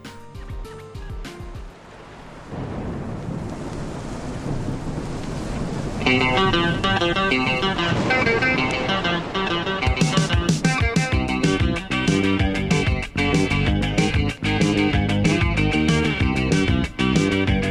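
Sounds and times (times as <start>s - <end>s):
music: 0.0s - 1.7s, 6.1s - 17.6s
low rumbling thunder: 0.0s - 17.6s
heavy rain: 1.0s - 17.6s.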